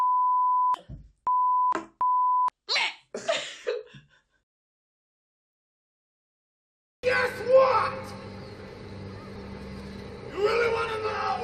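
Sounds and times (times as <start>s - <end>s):
censor bleeps over spoken name: 0.0s - 2.5s
person talking excitedly: 7.0s - 8.2s, 10.3s - 11.4s.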